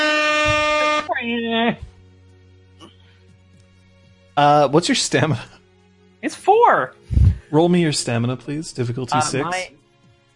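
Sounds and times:
loud brassy air horn honking: 0.0s - 1.3s
speech: 1.2s - 1.9s, 4.4s - 5.6s, 6.2s - 9.8s.

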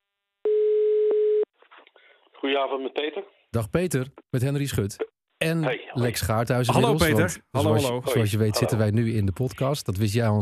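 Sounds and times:
telephone ringing tone while placing a call: 0.5s - 1.5s
speech: 2.4s - 10.4s.

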